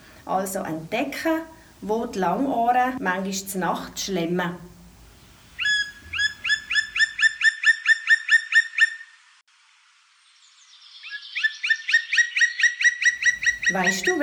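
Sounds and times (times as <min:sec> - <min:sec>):
speech: 0:00.3 - 0:04.7, 0:13.7 - 0:14.2
black woodpecker calling in ringing series of rapid notes: 0:04.7 - 0:09.2, 0:11.0 - 0:14.2.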